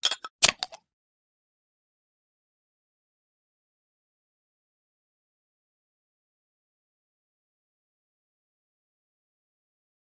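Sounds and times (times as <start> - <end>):
beer being opened: 0.0 - 0.8.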